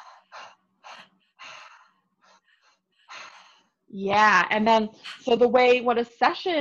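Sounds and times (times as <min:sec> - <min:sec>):
deep open-mouth breathing and exhaling: 0:00.0 - 0:03.9
speech: 0:03.9 - 0:06.5.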